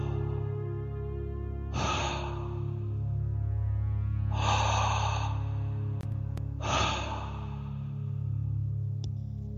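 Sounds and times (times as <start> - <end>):
soft steady droning background: 0.0 - 9.5
slow deep inhalations during a guided breathing exercise: 1.7 - 3.2, 4.2 - 8.8.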